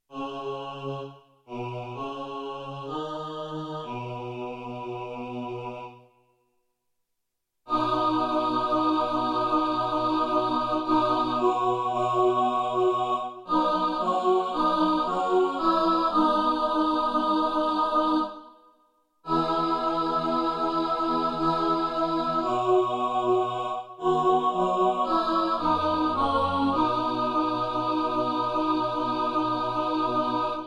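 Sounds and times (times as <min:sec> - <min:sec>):
alto choir: 0:00.1 - 0:06.1, 0:07.7 - 0:18.6, 0:19.2 - 0:30.6.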